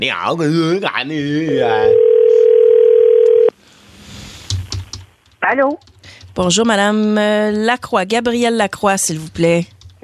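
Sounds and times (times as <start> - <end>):
speech: 0.0 - 2.0, 5.5 - 10.0
telephone dial tone while a call is placed: 1.9 - 3.5.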